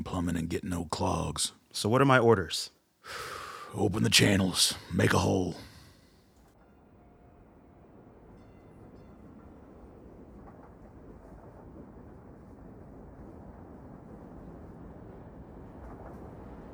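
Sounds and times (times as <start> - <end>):
speech: 0.1 - 5.7
train rumbling along tracks heard from inside: 3.7 - 5.9, 6.6 - 16.7.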